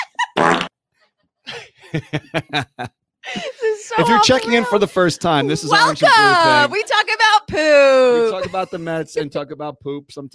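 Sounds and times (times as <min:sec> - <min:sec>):
buzzy fart sound effect from a soundboard button: 0:00.4 - 0:00.7
laughter: 0:01.5 - 0:06.8, 0:08.0 - 0:09.5
speech: 0:01.9 - 0:10.3.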